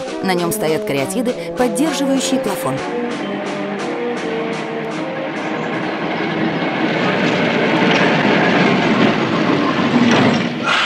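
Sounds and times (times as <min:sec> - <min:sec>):
tram pulling in to a stop: 0:00.0 - 0:10.8
speech: 0:00.2 - 0:03.6
tram wheels clattering on rails: 0:02.8 - 0:10.8.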